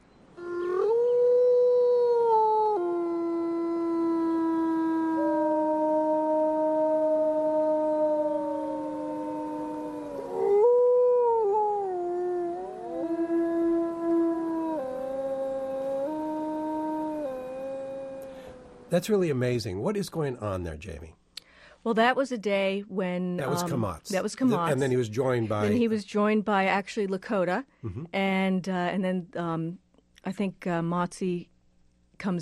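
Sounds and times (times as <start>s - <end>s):
wolves howling: 0.4s - 18.9s
speech: 19.0s - 21.2s, 21.8s - 31.5s, 32.2s - 32.4s.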